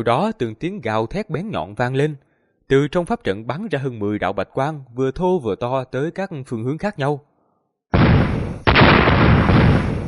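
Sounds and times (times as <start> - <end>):
speech: 0.0 - 7.3
dense series of loud explosions: 7.9 - 10.0.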